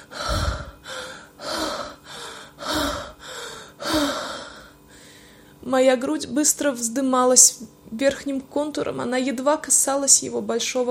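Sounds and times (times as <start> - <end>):
woman breathing convulsively with heavy gasping breaths at a trainer's command: 0.0 - 5.6
speech: 5.7 - 10.8.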